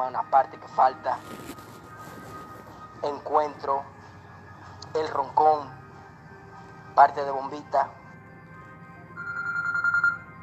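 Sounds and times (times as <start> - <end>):
speech: 0.0 - 1.6, 3.0 - 4.0, 4.9 - 5.8, 7.0 - 8.0
telephone ringing with an incoming call: 9.1 - 10.4.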